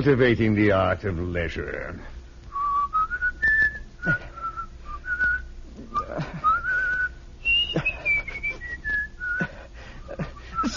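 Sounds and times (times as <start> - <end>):
speech: 0.0 - 2.2
person whistling a lilting melody: 2.5 - 9.5, 10.1 - 10.7.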